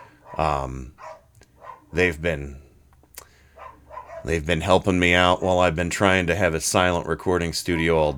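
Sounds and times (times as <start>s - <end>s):
neighbor's dogs barking: 0.0s - 2.1s, 3.4s - 4.8s, 7.7s - 8.1s
speech: 0.4s - 1.1s, 1.9s - 2.6s, 4.2s - 8.1s.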